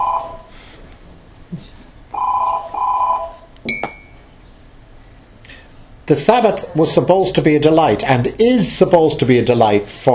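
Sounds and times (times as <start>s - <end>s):
electronic telephone ringing: 0.0s - 0.5s, 2.1s - 3.5s
speech: 6.1s - 10.1s.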